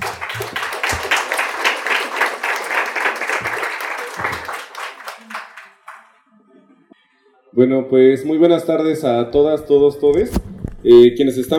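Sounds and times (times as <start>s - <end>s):
audience applause at a community forum against mining: 0.0s - 6.3s
speech: 7.6s - 11.5s.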